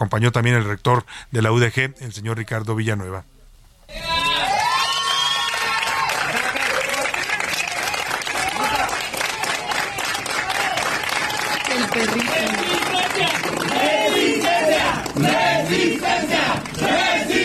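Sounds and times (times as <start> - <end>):
speech: 0.0 - 4.1, 11.9 - 12.6
large crowd of students cheering and shouting: 3.9 - 7.0, 8.4 - 17.4
clapping: 5.0 - 15.4
crowd of students chanting slogans: 11.3 - 17.4.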